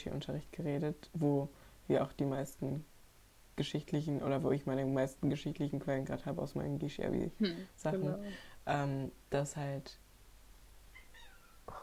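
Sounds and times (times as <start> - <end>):
speech: 0.0 - 2.9, 3.6 - 10.0
cat meowing and yowling: 11.0 - 11.6.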